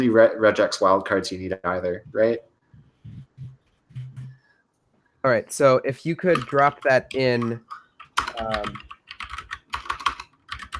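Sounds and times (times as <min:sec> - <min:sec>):
speech: 0:00.0 - 0:02.5, 0:05.2 - 0:07.8, 0:08.4 - 0:08.9
typing on a computer keyboard while entering commands in a text editor: 0:06.3 - 0:10.7.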